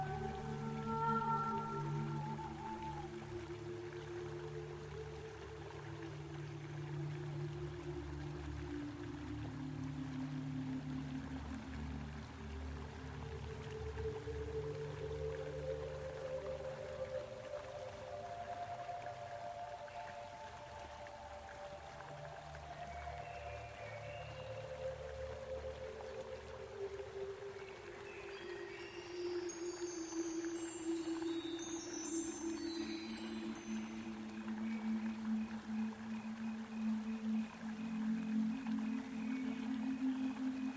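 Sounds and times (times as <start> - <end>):
soft humming and wordless singing: 0.0 - 40.7
steady water flow: 0.0 - 40.7
bright twinkling: 28.3 - 37.0.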